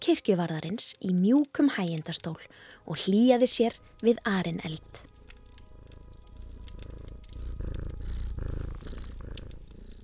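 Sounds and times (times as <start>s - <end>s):
speech: 0.1s - 5.1s
big black cat purring contentedly in a lap by the fire: 3.7s - 10.0s.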